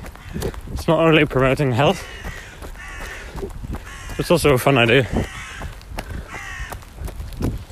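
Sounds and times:
crows cawing: 0.0 - 0.7, 1.6 - 7.0
scuffing steps of a person running at an easy pace: 0.0 - 7.6
steady outdoor rumble: 0.0 - 7.6
speech: 0.3 - 2.3, 4.2 - 5.4.

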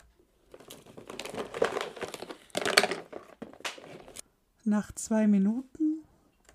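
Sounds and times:
someone rummaging through cardboard boxes and paper: 0.4 - 4.2
speech: 4.7 - 5.8.

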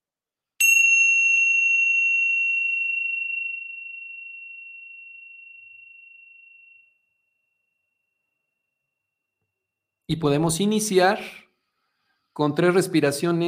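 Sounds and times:
meditation bell struck and ringing: 0.6 - 7.4
speech: 10.1 - 11.4, 12.4 - 13.4.

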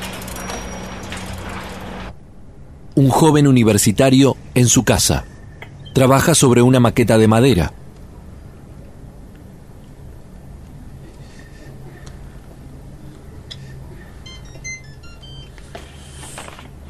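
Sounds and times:
steady low rumble: 0.0 - 15.5
speech: 3.0 - 5.3, 6.0 - 7.8
cell phone text message notification tone of high electronic chirps: 14.2 - 15.6.

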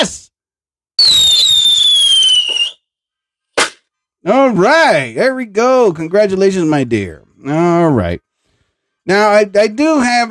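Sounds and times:
speech: 0.0 - 0.3, 1.0 - 2.3, 4.2 - 8.3, 9.0 - 10.3
firework rocket whistling: 1.0 - 2.9.

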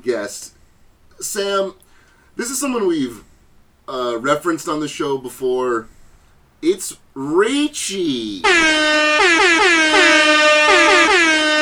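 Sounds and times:
speech: 0.1 - 0.6, 1.2 - 1.8, 2.4 - 3.3, 3.9 - 6.0, 6.6 - 11.4
reggaeton DJ air horn blasts: 8.4 - 11.6.

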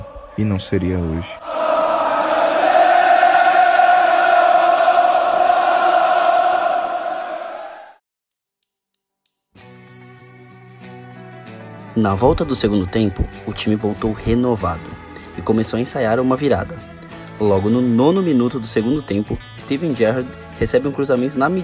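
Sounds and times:
huge stadium crowd of football fans singing together: 0.0 - 0.4, 1.4 - 8.0
speech: 0.4 - 1.7, 12.0 - 21.6
music: 8.7 - 21.6.

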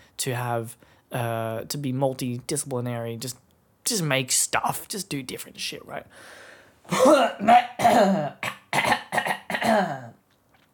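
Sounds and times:
speech: 0.2 - 9.2
person with a sore throat clearing throat: 6.9 - 10.2
person with a sore throat coughing: 6.9 - 10.2.

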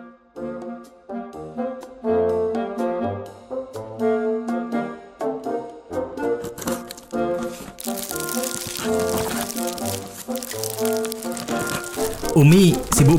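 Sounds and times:
steady musical backing: 0.0 - 13.1
plastic wrapping crinkling and rustling while packing gift hampers: 6.4 - 13.1
speech: 12.4 - 13.1.

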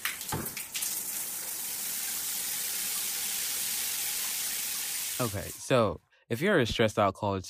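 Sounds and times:
brief knocks and splashes: 0.0 - 0.8
shower spraying water: 0.0 - 5.7
speech: 5.2 - 7.4.

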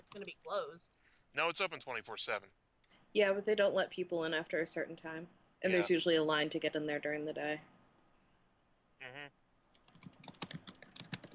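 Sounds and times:
speech: 0.1 - 7.7, 9.0 - 9.4
fingers typing on a computer keyboard: 9.7 - 11.3.

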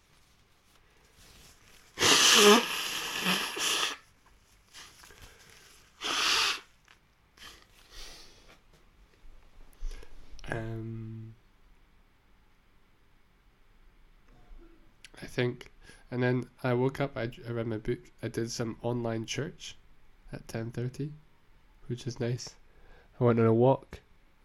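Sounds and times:
person with a snotty nose blowing it: 1.3 - 4.1, 4.7 - 6.8, 7.4 - 8.3
speech: 15.4 - 21.2, 21.9 - 22.6, 23.2 - 24.4.

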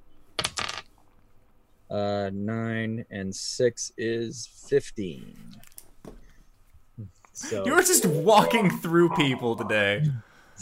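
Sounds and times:
dice rolling across a tabletop in a tabletop game: 0.4 - 1.0
speech: 1.9 - 5.7, 7.0 - 10.6.

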